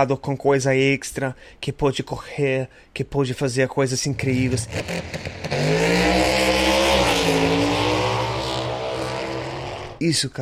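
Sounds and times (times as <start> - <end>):
speech: 0.0 - 6.5, 10.0 - 10.4
fast race car engine roaring at high revs: 4.1 - 10.0.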